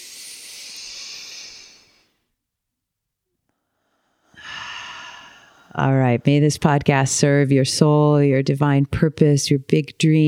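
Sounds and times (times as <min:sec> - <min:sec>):
deep inhale: 0:00.0 - 0:02.2, 0:03.6 - 0:05.8
speech: 0:05.7 - 0:10.2.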